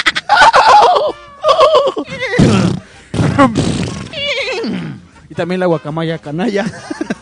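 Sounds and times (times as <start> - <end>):
laughter: 0.0 - 4.8, 6.6 - 7.1
voice imitating a horse neighing: 0.0 - 5.0
speech: 3.4 - 3.8, 5.4 - 7.1.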